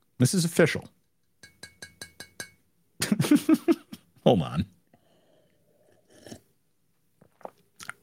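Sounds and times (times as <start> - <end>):
speech: 0.2 - 1.0, 3.7 - 4.8
slurping sips of a drink: 5.4 - 6.5.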